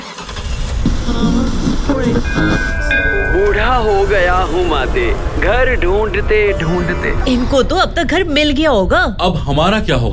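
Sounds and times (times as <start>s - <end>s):
passenger train rumbling on the rails in Auckland: 0.3s - 8.9s
speech: 1.1s - 10.1s.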